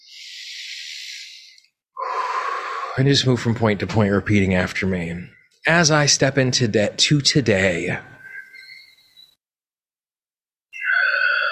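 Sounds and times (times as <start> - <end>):
deep breath during a guided tapping exercise: 0.0 - 3.0
speech: 3.0 - 8.1.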